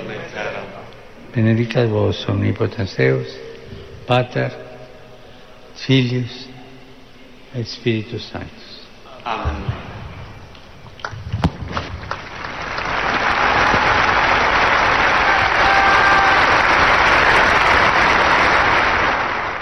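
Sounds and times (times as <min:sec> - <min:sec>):
speech: 0:00.4 - 0:03.5, 0:04.1 - 0:04.7, 0:05.8 - 0:06.5, 0:07.5 - 0:08.6, 0:09.2 - 0:09.9
large crowd applauding outdoors in a square: 0:11.0 - 0:19.6.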